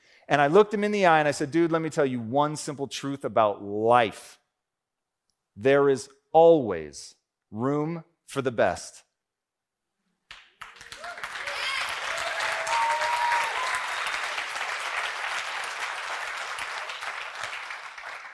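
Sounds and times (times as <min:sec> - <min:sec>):
speech: 0:00.3 - 0:04.4, 0:05.6 - 0:09.0
crowd applauding: 0:10.3 - 0:18.3
faint voices and cheers: 0:11.0 - 0:14.1.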